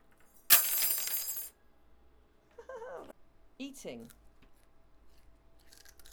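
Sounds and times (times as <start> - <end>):
metal swords dropping with a clash and ring: 0.5 - 1.5
speech: 3.6 - 4.2.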